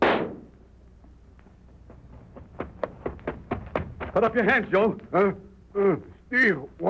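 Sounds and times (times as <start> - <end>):
gunshot: 0.0 - 0.5
speech: 4.2 - 6.8.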